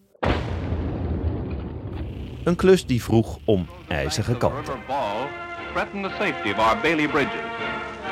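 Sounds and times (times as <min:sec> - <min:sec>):
explosive charge blasting river ice: 0:00.2 - 0:02.9
speech: 0:02.5 - 0:08.0.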